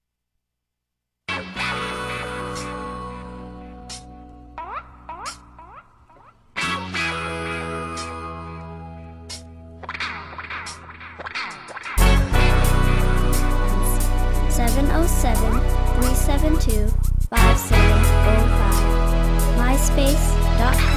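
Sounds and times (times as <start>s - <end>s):
east coast horns: 12.0s - 20.9s.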